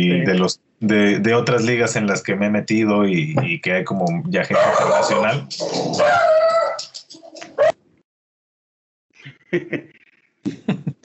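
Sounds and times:
speech: 0.0s - 6.5s, 9.5s - 10.9s
dogs barking and whimpering: 4.5s - 7.8s
laughter: 9.2s - 11.0s.

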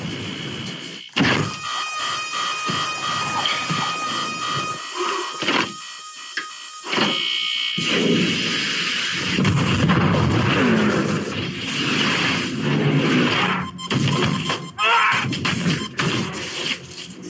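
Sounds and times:
harsh bursts and clunks: 0.0s - 8.5s, 9.2s - 17.0s
shrill electronic alarm tones: 0.6s - 9.4s, 13.4s - 16.4s.

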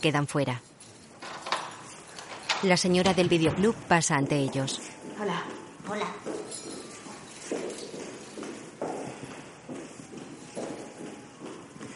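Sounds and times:
speech: 0.0s - 0.7s, 2.6s - 6.3s
woman's footsteps going down stairs: 3.1s - 11.9s.

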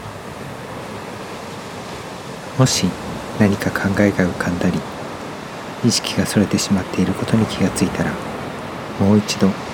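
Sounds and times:
ocean waves breaking on a beach: 0.0s - 9.7s
speech: 2.6s - 5.0s, 5.8s - 8.3s, 9.0s - 9.7s.

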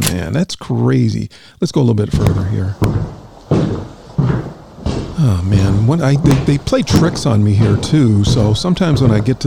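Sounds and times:
speech: 0.1s - 3.9s, 5.2s - 9.4s
door slamming shut: 2.1s - 9.4s.

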